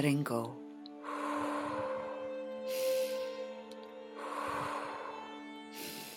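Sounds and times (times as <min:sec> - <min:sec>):
steady calm musical drone: 0:00.0 - 0:06.1
slow relaxing deep breathing: 0:00.9 - 0:06.1.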